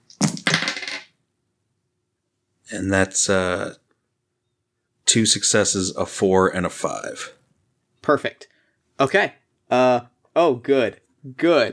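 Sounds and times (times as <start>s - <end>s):
four madness dice clattering onto a hard surface: 0.1s - 1.1s
speech: 2.7s - 3.8s, 5.1s - 7.4s, 8.0s - 11.7s.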